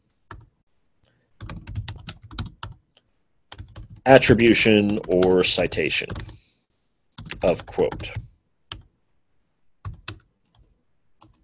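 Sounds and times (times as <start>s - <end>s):
typing text on a computer keyboard: 0.3s - 0.5s, 1.4s - 2.8s, 3.5s - 4.0s, 4.8s - 5.5s, 6.1s - 6.4s, 7.2s - 8.9s, 9.8s - 11.4s
speech: 4.0s - 6.4s, 7.4s - 8.3s.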